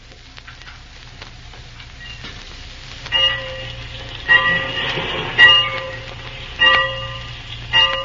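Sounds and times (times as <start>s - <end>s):
train idling at a station: 1.4s - 8.0s
bell clanging: 3.1s - 8.0s.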